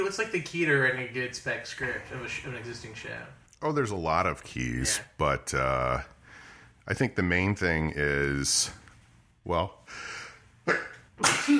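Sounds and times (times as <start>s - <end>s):
speech: 0.0s - 6.2s, 6.9s - 8.8s, 9.4s - 11.5s
sneeze with sharp intake of breath: 10.7s - 11.5s.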